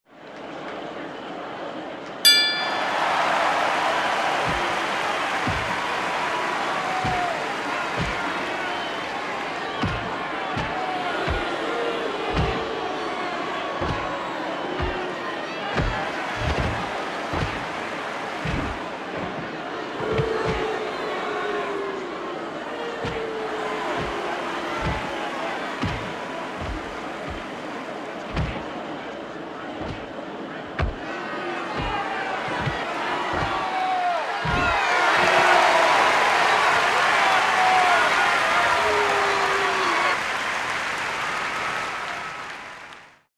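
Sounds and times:
boxing crowd shouting: 0.4 - 43.0
boxing bell hits: 2.3 - 3.9.

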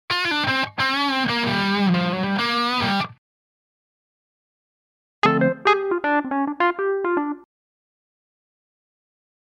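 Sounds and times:
short lively electric guitar ending music: 0.1 - 3.2, 5.2 - 7.4.

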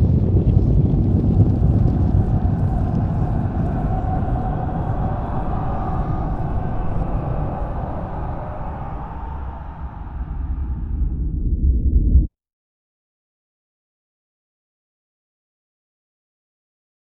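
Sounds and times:
terrifying scream with effects: 0.2 - 12.1.

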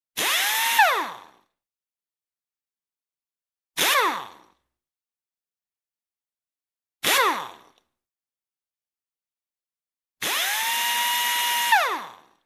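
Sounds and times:
pneumatic impact wrench running without load: 0.2 - 1.5, 3.8 - 4.6, 7.0 - 7.9, 10.2 - 12.4.

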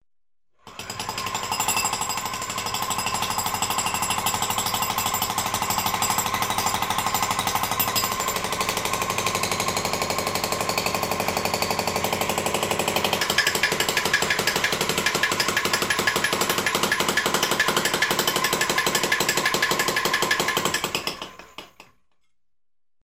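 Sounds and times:
electric jackhammer at a construction site: 0.6 - 21.9.

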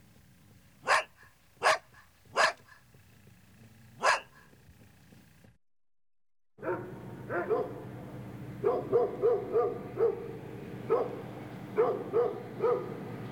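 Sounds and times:
large dog barking: 0.8 - 2.9, 3.6 - 4.6, 6.6 - 7.8, 8.6 - 13.0.

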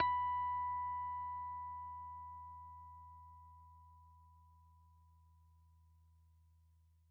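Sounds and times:
clean electric guitar harmonics: 0.0 - 3.0.

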